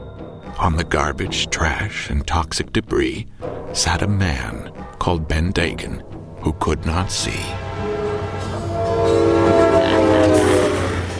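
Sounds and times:
speech: 0:00.6 - 0:07.9
steam train rumbling along steel track: 0:07.4 - 0:11.1.

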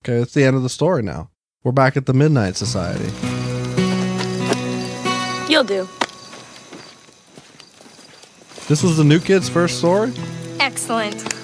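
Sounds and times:
speech: 0:00.0 - 0:03.4, 0:05.5 - 0:06.0, 0:08.7 - 0:11.4
faint hiss: 0:02.4 - 0:11.4
horse hooves of a returning horseman clip-clopping: 0:02.7 - 0:11.4.

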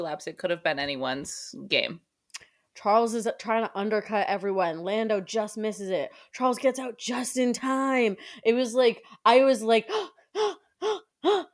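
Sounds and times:
speech: 0:00.0 - 0:02.1, 0:02.8 - 0:10.6
person gasping: 0:09.9 - 0:11.5.

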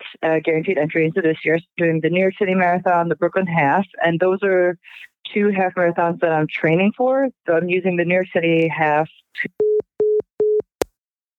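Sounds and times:
speech: 0:00.2 - 0:09.6
telephone busy tone beeps: 0:09.6 - 0:10.6.

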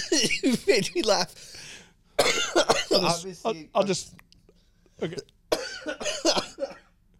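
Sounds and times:
harsh coughing: 0:00.0 - 0:00.8, 0:02.2 - 0:03.2, 0:05.5 - 0:07.0
speech: 0:00.1 - 0:01.5, 0:02.9 - 0:04.3, 0:05.0 - 0:06.2.

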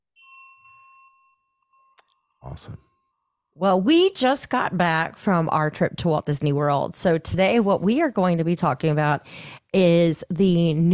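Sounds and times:
bright notification bell ding: 0:00.2 - 0:02.0
speech: 0:02.4 - 0:02.9, 0:03.6 - 0:10.9.

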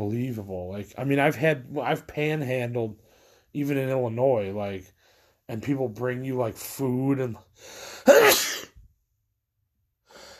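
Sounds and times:
speech: 0:00.0 - 0:08.6
sneeze: 0:08.1 - 0:08.8.

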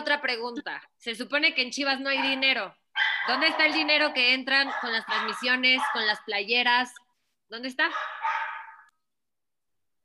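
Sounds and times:
speech: 0:00.1 - 0:08.1
dog barking: 0:02.0 - 0:06.3, 0:07.8 - 0:09.0.

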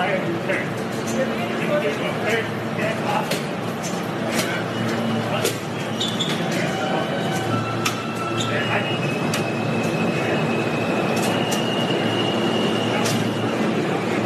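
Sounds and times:
subway train rumbling through a station: 0:00.0 - 0:14.2
voices: 0:00.0 - 0:14.2
subway train metallic wheel squeal: 0:04.5 - 0:13.8.

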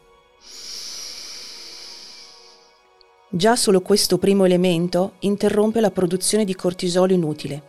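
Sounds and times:
deep breath in and out: 0:00.4 - 0:02.9
speech: 0:03.3 - 0:07.6.

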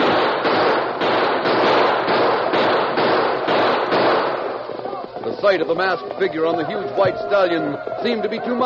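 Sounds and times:
gunshots during a fight around wagons on an open prairie: 0:00.0 - 0:06.2
speech: 0:05.5 - 0:08.6.

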